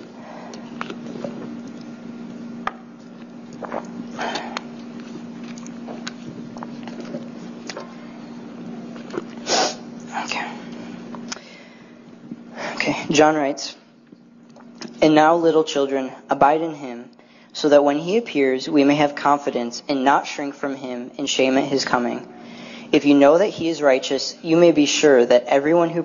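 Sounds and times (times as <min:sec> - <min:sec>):
steady low electrical hum: 0:00.0 - 0:26.0
sipping and swallowing a drink: 0:00.5 - 0:08.0, 0:08.9 - 0:09.5, 0:14.4 - 0:15.0
slurps: 0:03.1 - 0:08.0, 0:09.0 - 0:09.8
speech: 0:13.1 - 0:13.8, 0:15.0 - 0:26.0.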